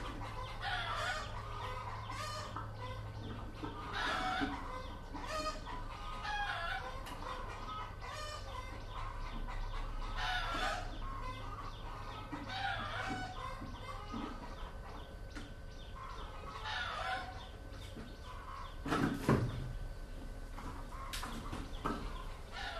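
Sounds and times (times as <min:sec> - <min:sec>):
chickens clucking and cackling in Vietnam: 0:00.0 - 0:22.7
steady low hum: 0:00.0 - 0:22.7.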